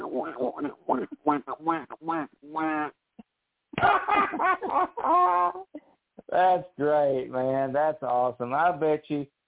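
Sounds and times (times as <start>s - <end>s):
novelty duck horn quacking: 0.0s - 2.9s
speech: 0.2s - 3.0s, 3.8s - 9.4s
laughter: 3.8s - 5.6s.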